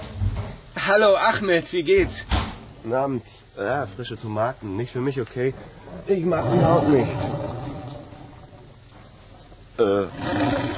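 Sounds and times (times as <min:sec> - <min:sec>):
speech: 0:00.9 - 0:07.5, 0:09.8 - 0:10.7
loud stomach growl from a hungry person: 0:06.3 - 0:09.0.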